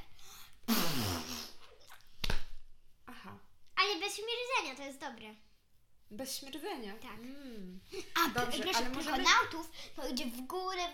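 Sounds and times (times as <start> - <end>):
person blowing a long wet raspberry imitating a fart: 0.6 - 2.0
speech: 4.1 - 5.5, 6.1 - 10.9.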